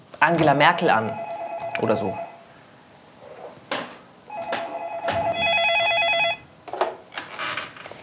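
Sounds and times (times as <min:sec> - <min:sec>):
speech: 0:00.2 - 0:01.2, 0:01.8 - 0:02.2
telephone with sustained electronic ring: 0:01.0 - 0:02.4, 0:04.3 - 0:06.5.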